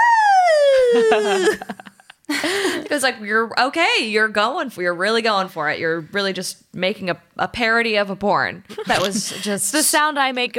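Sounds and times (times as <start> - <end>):
woman's voice imitating a siren: 0.0 - 1.6
laughter: 0.7 - 2.9
speech: 0.9 - 10.5.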